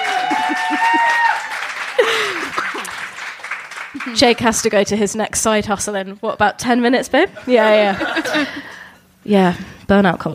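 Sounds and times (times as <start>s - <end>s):
cheers and whoops: 0.0s - 2.9s
laughter: 0.0s - 3.2s, 7.4s - 8.7s
live audience applause: 0.0s - 4.6s
speech: 4.1s - 10.3s.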